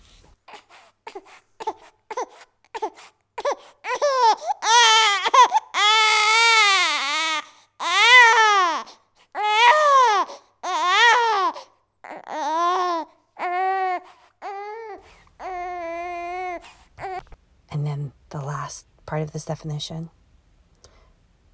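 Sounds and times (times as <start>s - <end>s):
infant gasping breaths: 0.5s - 5.8s, 7.4s - 17.4s
colicky infant crying and screaming: 0.5s - 17.2s
speech: 19.3s - 20.2s.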